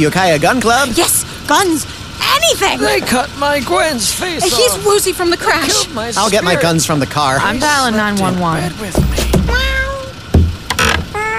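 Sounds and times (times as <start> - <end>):
speech: 0.0 - 9.2
sharp thumps: 8.9 - 11.2
cats meowing: 9.2 - 10.3, 11.1 - 11.3.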